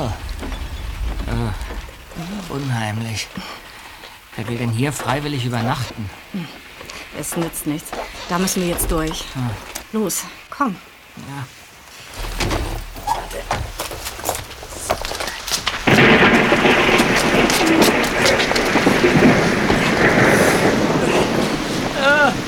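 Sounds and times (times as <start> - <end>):
low rumble of thunder: 0.0 - 9.9, 12.2 - 22.4
heavy rain: 0.0 - 22.4
speech: 2.5 - 3.6, 4.4 - 11.6.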